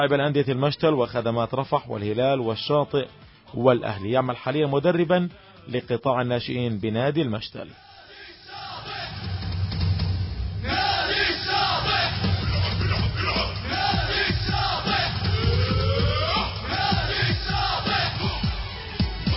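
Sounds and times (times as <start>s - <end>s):
speech: 0.0s - 7.9s
crowd of football supporters chanting and shouting while marching: 7.7s - 9.9s, 10.6s - 19.3s.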